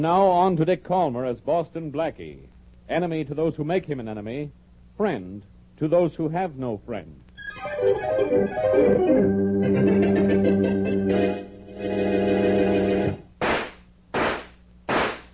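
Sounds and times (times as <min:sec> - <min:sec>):
speech: 0:00.0 - 0:09.9
sustained music: 0:07.4 - 0:13.2
gunshots fired into a mattress: 0:13.4 - 0:15.3.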